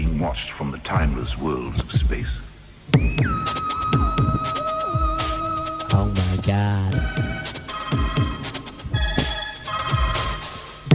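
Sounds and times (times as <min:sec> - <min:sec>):
speech: 0:00.2 - 0:04.6
deep thudding pulses dropping in pitch: 0:00.9 - 0:09.4
electronic telephone ringtone: 0:07.1 - 0:10.7.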